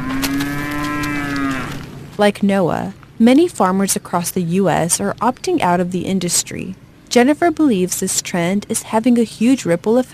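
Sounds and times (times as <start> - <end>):
cow mooing: 0.0 - 1.8
faint noise: 0.0 - 10.1
speech: 2.2 - 10.1.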